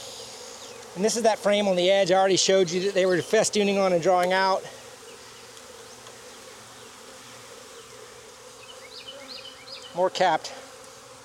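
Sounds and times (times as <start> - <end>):
many honey bees buzzing: 0.0 - 11.2
speech: 1.0 - 4.8, 10.0 - 10.6.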